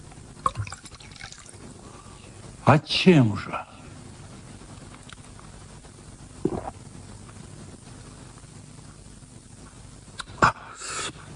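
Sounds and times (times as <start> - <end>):
drink pouring into a glass: 0.4 - 1.6
speech: 2.7 - 3.6.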